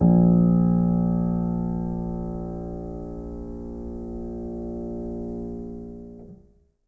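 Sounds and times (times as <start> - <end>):
acoustic piano: 0.0 - 6.5.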